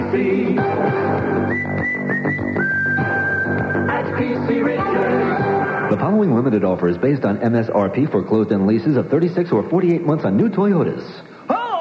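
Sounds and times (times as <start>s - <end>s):
busy musical backing: 0.0s - 10.5s
speech: 0.1s - 1.9s, 4.2s - 11.3s
whistled jingle in a radio advertisement for an appliance store: 1.4s - 4.5s.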